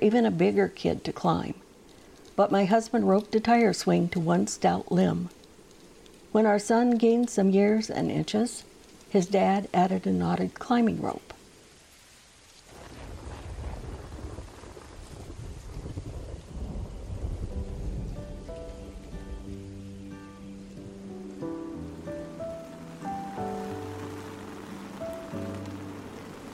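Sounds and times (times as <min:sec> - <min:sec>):
speech: 0:00.0 - 0:01.6, 0:02.4 - 0:05.4, 0:06.3 - 0:11.3
steady rain hissing in a thunderstorm: 0:00.0 - 0:26.5
low thunder rumbling heavily: 0:12.7 - 0:26.5
soft sustained musical tones: 0:17.1 - 0:26.5.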